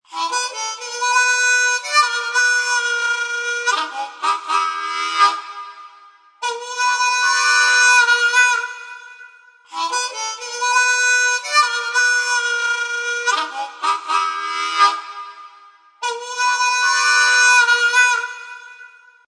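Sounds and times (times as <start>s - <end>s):
harmonica riff ringtone: 0.1s - 19.2s.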